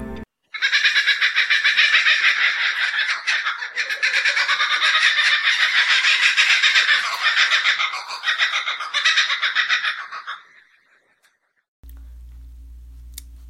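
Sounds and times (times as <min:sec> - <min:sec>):
kookaburra laughing: 0:00.6 - 0:10.9.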